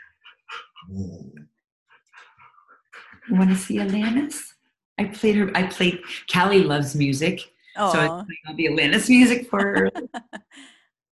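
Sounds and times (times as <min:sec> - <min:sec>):
dog groaning: 0:00.3 - 0:01.4
speech: 0:00.8 - 0:01.4, 0:03.3 - 0:10.8
laughter: 0:07.8 - 0:08.5, 0:09.4 - 0:10.6.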